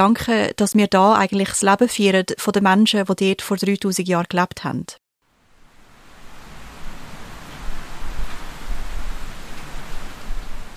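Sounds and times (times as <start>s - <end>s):
speech: 0.0s - 5.0s
heavy rain drumming on a stilt house roof heard from indoors: 5.4s - 10.7s.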